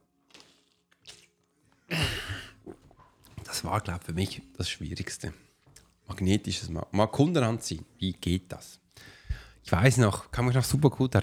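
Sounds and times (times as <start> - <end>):
faint lip smacking: 0.3 - 1.4, 2.6 - 3.6
soft wet mouth clicks while sipping water: 0.3 - 1.4, 2.6 - 3.5
louder gulping swallow of water: 2.4 - 4.6
speech: 3.6 - 5.5, 6.1 - 11.2.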